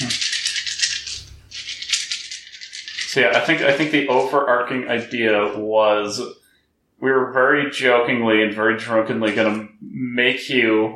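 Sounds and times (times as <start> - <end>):
dice rattling: 0.0 - 5.6
speech: 3.1 - 6.4, 7.0 - 10.9.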